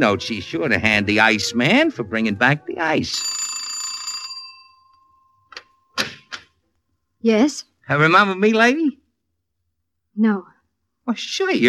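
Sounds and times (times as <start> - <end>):
speech: 0.0 - 3.4, 7.2 - 9.0, 10.2 - 10.5, 11.1 - 11.6
bright doorbell chime: 3.1 - 6.0.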